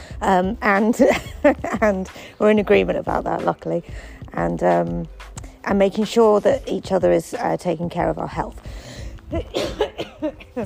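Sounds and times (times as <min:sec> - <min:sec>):
speech: 0:00.2 - 0:10.6
person coughing and spluttering: 0:09.3 - 0:10.6.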